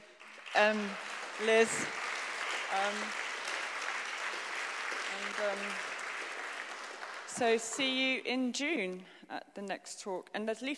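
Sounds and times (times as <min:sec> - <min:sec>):
audience applause at a talk: 0:00.0 - 0:07.8
speech: 0:00.6 - 0:02.0, 0:02.7 - 0:03.2, 0:05.2 - 0:05.9, 0:07.4 - 0:10.7.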